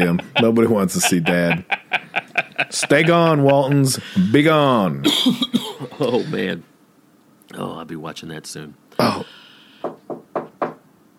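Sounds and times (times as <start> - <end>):
speech: 0.0 - 1.8, 2.4 - 6.7, 7.5 - 9.4
laughter: 0.0 - 4.0, 5.1 - 6.5
firm knocking on a door: 9.8 - 10.8.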